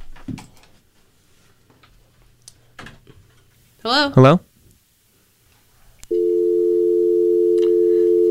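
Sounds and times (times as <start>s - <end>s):
speech: 3.8s - 4.5s
steady loud continuous phone tone after a call is hung up: 6.1s - 8.2s.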